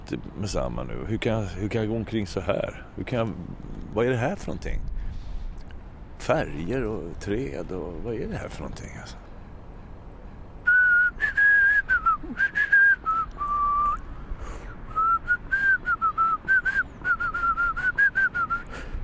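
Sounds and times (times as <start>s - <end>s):
speech: 0.1s - 5.0s, 6.2s - 9.2s
person with a swollen lip whistling a short melody: 10.6s - 14.0s, 14.9s - 18.8s.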